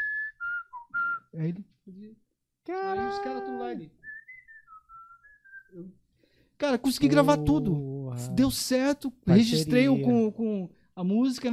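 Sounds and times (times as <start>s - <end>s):
person whistling a melody: 0.0s - 1.4s, 4.0s - 5.8s
speech: 1.3s - 4.0s, 5.7s - 6.0s, 6.6s - 11.5s.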